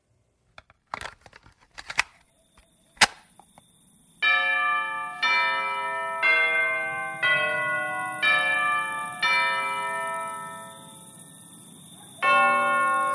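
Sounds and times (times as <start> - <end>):
crinkling and rustling noises: 0.5 - 3.6
bell tolling the hour: 4.2 - 13.1.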